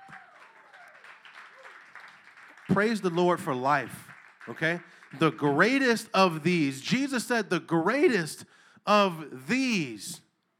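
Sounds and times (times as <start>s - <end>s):
church audience clapping hands: 0.0s - 6.0s
speech: 2.7s - 10.2s.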